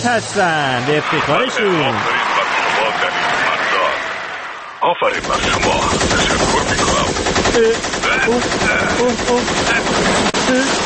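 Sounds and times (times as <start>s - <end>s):
speech: 0.0s - 2.3s, 4.8s - 10.8s
laughter: 0.4s - 4.1s
machine gun fire: 5.1s - 10.8s.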